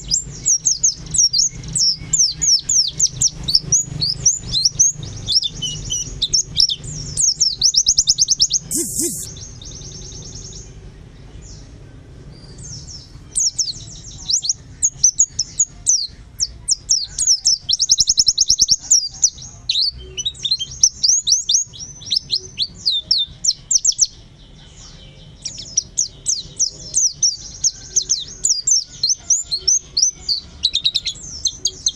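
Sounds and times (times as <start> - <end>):
white-eye song of shrill twittering and chattering trills: 0.0 - 31.9.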